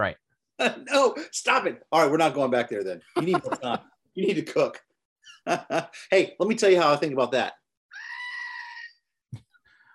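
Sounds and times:
speech: 0.0 - 7.6
laughter: 3.2 - 3.9
goat screaming: 7.9 - 9.0.

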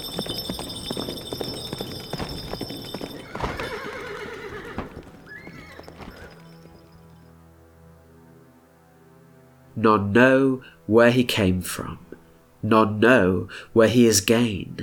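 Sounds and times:
horse hooves galloping across a hall floor: 0.0 - 7.4
speech: 9.8 - 14.8.

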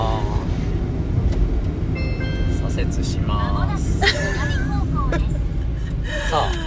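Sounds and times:
engine and road rumble inside a moving car cabin: 0.0 - 6.6
speech: 2.8 - 4.3.

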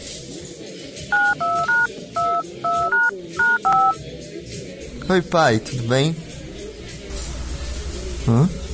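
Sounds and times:
telephone keypad tones as a number is dialed on a regular phone: 1.1 - 4.0
speech: 5.1 - 6.2, 8.3 - 8.6.

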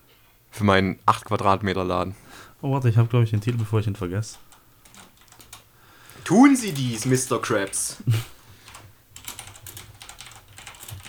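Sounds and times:
faint low hum: 0.0 - 11.0
speech: 0.6 - 4.5, 6.3 - 8.3
man typing rapidly on a computer keyboard: 3.4 - 5.7, 6.6 - 7.8, 8.7 - 11.0.

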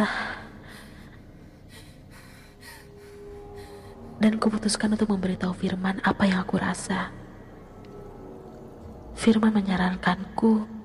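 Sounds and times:
low hum: 0.0 - 10.8
heavy ragged panting breaths: 0.6 - 4.2
speech: 4.2 - 7.2, 9.2 - 10.8.

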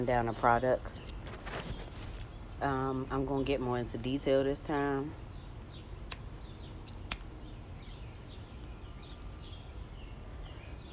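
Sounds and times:
speech: 0.0 - 1.1, 2.6 - 5.2
small birds chirping outdoors by a front porch: 0.0 - 10.9
sharp clicks: 6.0 - 7.3.

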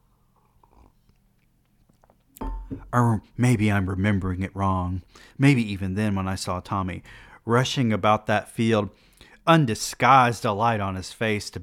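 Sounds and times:
soft mouth sounds while sipping tea: 0.1 - 2.8
speech: 2.9 - 11.6.

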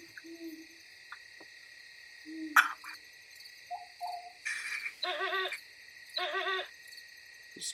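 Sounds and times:
owls hooting at night: 0.0 - 0.8, 2.2 - 3.0, 3.7 - 5.6, 6.2 - 6.7
insects chirring: 0.0 - 7.7.

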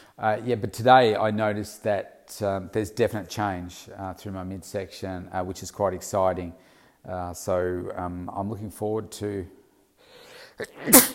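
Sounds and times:
speech: 0.2 - 9.6, 10.6 - 11.1
loud sneeze from hay fever: 10.6 - 11.1.

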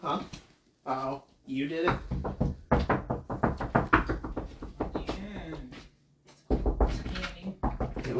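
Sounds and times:
speech: 0.0 - 2.6
pounding on a door: 1.9 - 5.7, 6.5 - 8.1.

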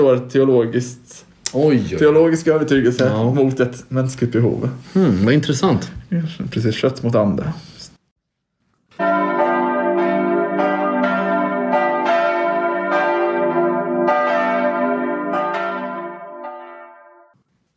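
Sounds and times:
speech: 0.0 - 7.7
church bells ringing: 8.9 - 17.4.

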